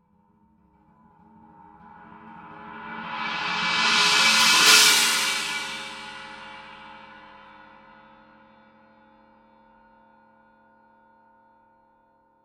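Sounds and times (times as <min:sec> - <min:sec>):
heavy china cymbal swell: 0:02.4 - 0:07.4.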